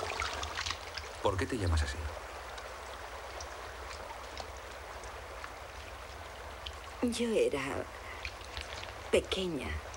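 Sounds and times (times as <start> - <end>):
faint splashy ticks in river water: 0.0 - 1.2, 2.5 - 7.0, 8.0 - 9.1
river water flowing in a steady rush: 0.0 - 9.9
speech: 1.2 - 2.3, 7.0 - 8.0, 9.1 - 9.9.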